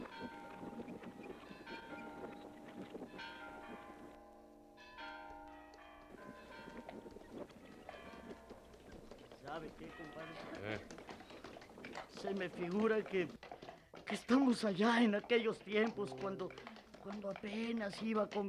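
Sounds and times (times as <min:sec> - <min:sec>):
church bells ringing joyfully in Juchipila: 0:00.0 - 0:08.9, 0:09.5 - 0:10.9
speech: 0:09.6 - 0:11.0, 0:12.1 - 0:13.4, 0:14.1 - 0:18.4.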